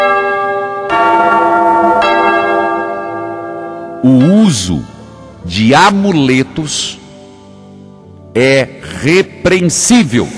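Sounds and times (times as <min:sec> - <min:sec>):
church bell ringing: 0:00.0 - 0:07.3
speech: 0:04.0 - 0:07.0, 0:08.4 - 0:10.3.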